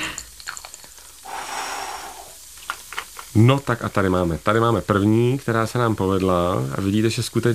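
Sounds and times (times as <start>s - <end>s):
soft steady breath blowing soap bubbles through a bubble wand: 1.2s - 2.5s
speech: 3.4s - 7.5s.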